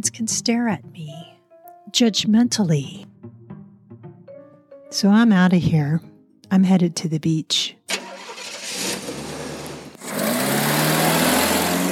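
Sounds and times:
speech: 0:00.0 - 0:01.3, 0:01.9 - 0:03.1, 0:04.9 - 0:07.8
car engine running at the beach: 0:07.9 - 0:11.9.

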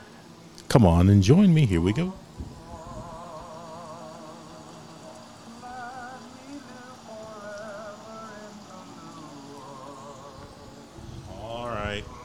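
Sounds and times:
speech: 0:00.7 - 0:02.2
wavering buzzy tones: 0:01.3 - 0:12.2
rain falling outdoors: 0:03.2 - 0:10.9.

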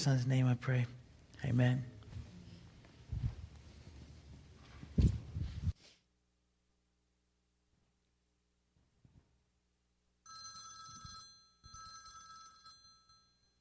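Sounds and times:
speech: 0:00.0 - 0:02.0
telephone ringing with electronic tone: 0:10.3 - 0:13.5.

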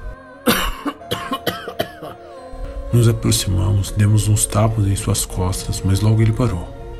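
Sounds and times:
person coughing after choking: 0:00.5 - 0:02.2
speech: 0:02.9 - 0:06.8.

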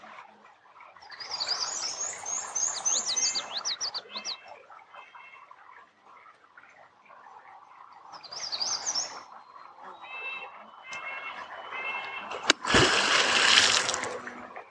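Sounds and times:
birds chirping and trilling: 0:00.5 - 0:14.6
water splashing: 0:07.9 - 0:14.6
beaver tail slapping water at a dam pond: 0:12.3 - 0:14.4.

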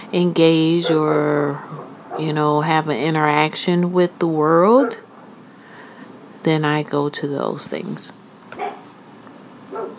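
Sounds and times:
speech: 0:00.1 - 0:05.0, 0:06.4 - 0:08.2
dog barking: 0:00.7 - 0:02.4, 0:04.8 - 0:05.4, 0:08.5 - 0:08.9, 0:09.7 - 0:09.9.

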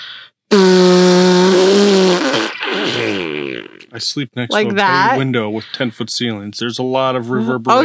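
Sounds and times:
voice imitating a loud, long fart: 0:00.5 - 0:04.6
speech: 0:04.0 - 0:07.8.

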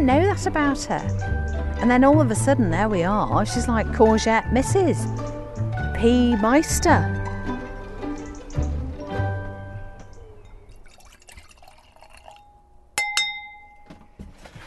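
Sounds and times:
speech: 0:00.0 - 0:05.3, 0:06.0 - 0:07.2
faint liquid sounds: 0:10.2 - 0:12.8
wine glasses clinking in a toast: 0:12.0 - 0:13.9.

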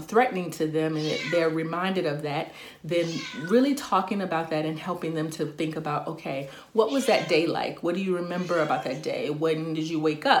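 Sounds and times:
speech: 0:00.0 - 0:10.3
cat meowing: 0:01.0 - 0:01.5, 0:03.0 - 0:03.6, 0:06.9 - 0:07.4, 0:08.4 - 0:09.0.

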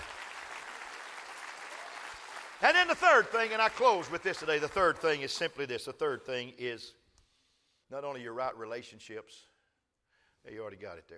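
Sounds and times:
audience clapping hands: 0:00.0 - 0:05.4
speech: 0:02.6 - 0:07.0, 0:07.9 - 0:09.5, 0:10.4 - 0:11.1.

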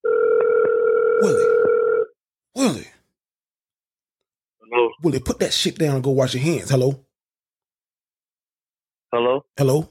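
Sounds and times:
telephone line tone at start of a prank phone call: 0:00.0 - 0:02.2
speech: 0:01.2 - 0:01.6, 0:05.0 - 0:07.1, 0:09.1 - 0:09.8.

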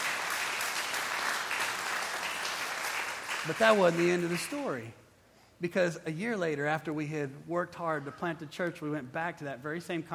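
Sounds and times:
crowd clapping: 0:00.0 - 0:04.9
speech: 0:03.4 - 0:05.0, 0:05.6 - 0:10.1.

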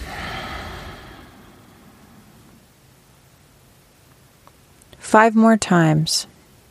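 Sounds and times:
slow soft breath pushed out through the nose: 0:00.0 - 0:02.6
speech: 0:05.0 - 0:06.4.

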